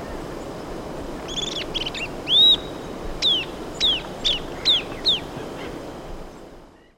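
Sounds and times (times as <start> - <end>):
Southern beardless-tyrannulet song in Ecuador: 1.3 - 5.3.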